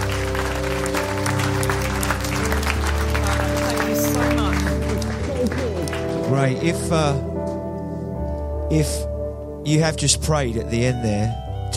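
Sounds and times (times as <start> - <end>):
audience applause: 0.0 - 7.0
sustained low musical tones: 0.0 - 11.7
speech: 6.4 - 7.3, 8.7 - 11.7.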